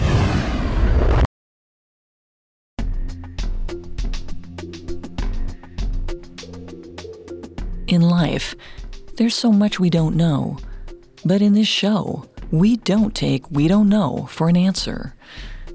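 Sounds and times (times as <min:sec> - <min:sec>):
spaceship plummeting into trees and exploding: 0:00.0 - 0:01.3
music with steady percussive beats: 0:02.8 - 0:11.3, 0:12.2 - 0:15.7
speech: 0:07.9 - 0:15.5.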